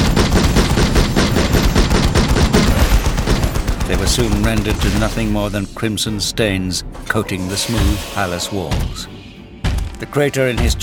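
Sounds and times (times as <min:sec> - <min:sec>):
gunfire barrage sound effect from a futuristic battle in a palace corridor: 0:00.0 - 0:05.3
speech: 0:04.1 - 0:09.2, 0:10.0 - 0:10.8.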